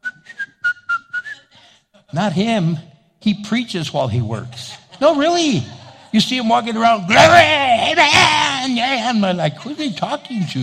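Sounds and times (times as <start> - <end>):
person whistling a short bouncy tune: 0.0 - 1.5
speech: 2.1 - 10.6
laughter: 4.3 - 7.5.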